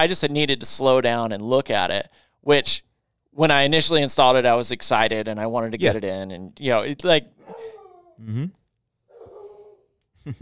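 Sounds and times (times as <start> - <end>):
speech: 0.0 - 8.6, 10.3 - 10.4
dog barking and yapping: 7.4 - 8.1, 9.1 - 9.9.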